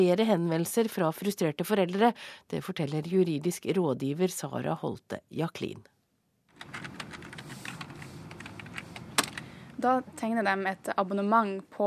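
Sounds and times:
speech: 0:00.0 - 0:05.9, 0:09.8 - 0:11.8
rapid typing on a computer keyboard: 0:06.6 - 0:09.5.

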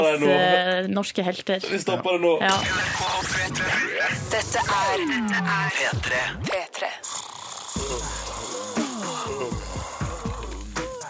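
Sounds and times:
speech: 0:00.0 - 0:07.2
person yawning: 0:07.6 - 0:11.0.

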